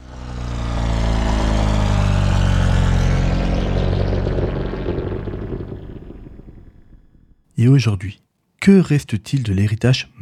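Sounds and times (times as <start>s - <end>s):
propeller airplane Gnome rotary engine running: 0.0s - 7.4s
speech: 7.6s - 10.2s.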